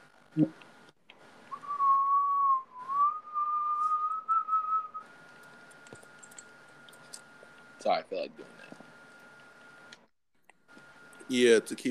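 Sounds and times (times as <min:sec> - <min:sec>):
speech: 0:00.4 - 0:00.7, 0:07.9 - 0:08.6, 0:11.3 - 0:11.8
person whistling a sustained wavering tone: 0:01.5 - 0:05.0.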